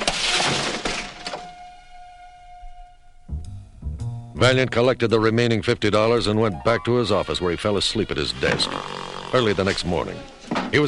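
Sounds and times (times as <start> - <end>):
window glass shattering as something crashes through blinds: 0.0 - 1.7
speech: 4.4 - 10.8.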